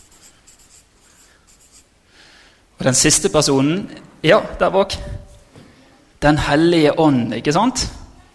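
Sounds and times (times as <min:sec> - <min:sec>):
chalk or marker scratching across a board drawing a triangle: 0:00.0 - 0:01.9
speech: 0:02.8 - 0:05.2, 0:06.2 - 0:08.0.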